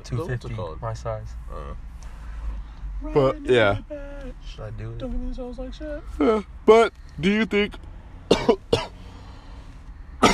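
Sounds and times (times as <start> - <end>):
speech: 0.0 - 1.9, 3.0 - 7.9, 8.5 - 9.0
harsh forceful coughs: 8.3 - 9.0.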